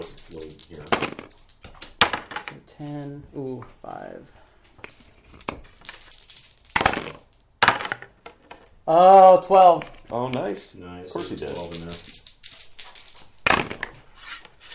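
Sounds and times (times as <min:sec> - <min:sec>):
speech: 0:00.0 - 0:01.1, 0:02.8 - 0:04.4, 0:08.9 - 0:12.1
two six-sided dice rolled across a tabletop: 0:00.0 - 0:02.6, 0:04.8 - 0:08.7, 0:09.5 - 0:14.7.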